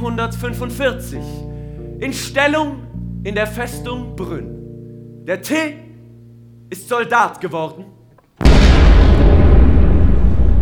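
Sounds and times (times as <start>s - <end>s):
speech: 0.1s - 4.6s, 5.2s - 5.8s, 6.7s - 8.5s
massive explosion blowing up a fortress bastion during a siege: 8.4s - 10.6s.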